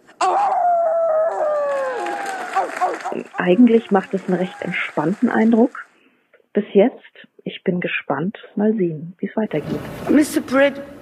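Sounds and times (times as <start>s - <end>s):
wolf howling: 0.2s - 4.8s
speech: 3.1s - 5.9s, 6.6s - 10.9s.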